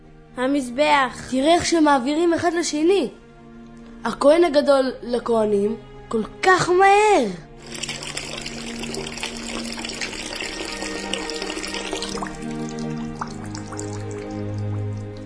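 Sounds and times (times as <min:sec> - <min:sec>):
speech: 0:00.4 - 0:03.2, 0:04.0 - 0:07.4
water poured from a golden jug over hands and feet: 0:07.6 - 0:15.2.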